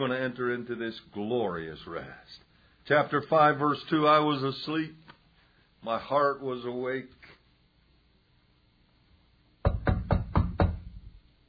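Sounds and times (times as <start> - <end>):
speech: 0.0 - 5.1, 5.8 - 7.2
knocking on a door: 9.6 - 11.2.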